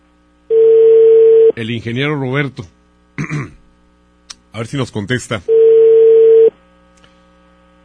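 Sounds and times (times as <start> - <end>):
loud steady telephone dialing tone: 0.5 - 1.6, 5.5 - 6.6
speech: 1.6 - 3.6, 4.5 - 5.6.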